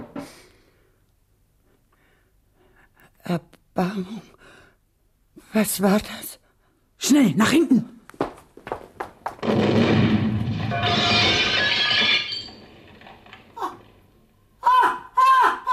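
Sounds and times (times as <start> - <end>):
speech: 3.3 - 4.4, 5.5 - 6.4, 7.0 - 7.9
bomb explosion blast with crashing and shattering: 9.4 - 14.0
shrill piercing screams: 14.6 - 15.7.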